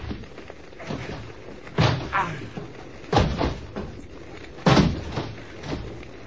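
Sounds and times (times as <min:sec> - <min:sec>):
faint shuffling: 0:00.0 - 0:06.2
rattling thuds of forcing a locked door: 0:00.8 - 0:04.0, 0:04.6 - 0:06.0.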